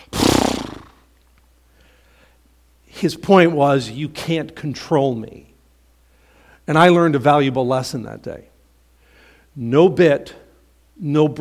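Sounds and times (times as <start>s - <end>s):
person vocally imitating a horse: 0.0s - 1.0s
speech: 3.0s - 5.5s, 6.7s - 8.5s, 9.6s - 10.4s, 11.0s - 11.4s.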